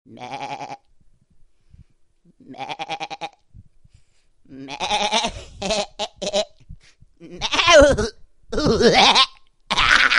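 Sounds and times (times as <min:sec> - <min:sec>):
goat bleating: 0:00.1 - 0:00.8, 0:02.4 - 0:03.4, 0:04.6 - 0:06.5, 0:07.2 - 0:10.0.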